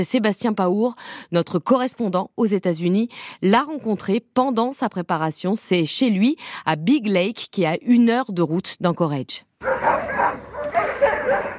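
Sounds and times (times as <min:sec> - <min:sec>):
speech: 0:00.0 - 0:10.5
pack of sled dogs barking and yipping: 0:09.6 - 0:11.5.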